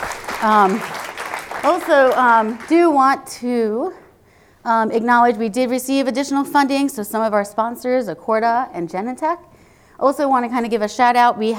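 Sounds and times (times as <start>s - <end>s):
audience applause: 0.0s - 2.7s
speech: 0.4s - 0.9s, 1.6s - 4.0s, 4.6s - 11.5s.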